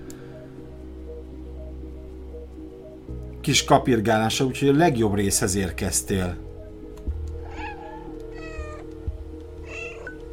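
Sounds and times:
speech: 0:03.4 - 0:06.5
cat meowing: 0:07.4 - 0:08.9, 0:09.6 - 0:10.3.

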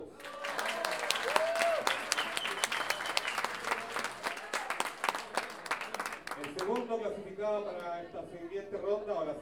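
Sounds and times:
audience applause at an improvised-verse singers' contest: 0:00.2 - 0:06.9
speech: 0:07.5 - 0:09.4.

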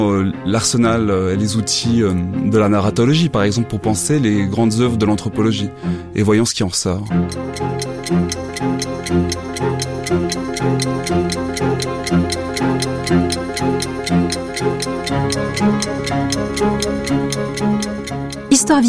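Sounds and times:
speech: 0:00.0 - 0:11.7
continuous music: 0:00.0 - 0:18.8
clock ticking fast and evenly: 0:07.1 - 0:18.8.

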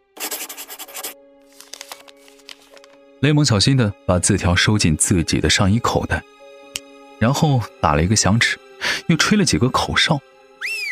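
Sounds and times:
pen scratching on paper while signing a signature: 0:00.2 - 0:01.2
speech: 0:03.2 - 0:06.3, 0:07.2 - 0:10.3.

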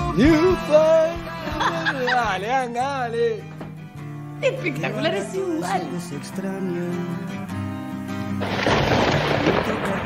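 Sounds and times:
laughter: 0:00.2 - 0:02.6
speech: 0:00.2 - 0:03.5, 0:04.4 - 0:07.7, 0:09.5 - 0:10.0
rain falling: 0:08.4 - 0:10.0.

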